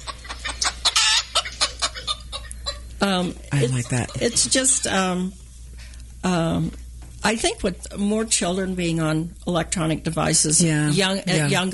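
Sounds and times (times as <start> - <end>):
hens clucking: 0.0 - 5.2
longer louder hen squawk: 0.6 - 2.8
speech: 3.0 - 5.4, 6.2 - 11.7.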